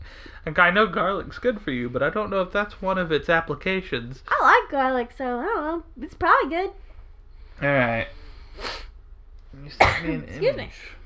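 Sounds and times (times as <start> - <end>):
speech: 0.4 - 6.9, 7.6 - 8.8, 9.6 - 11.0
sneeze: 9.8 - 10.2.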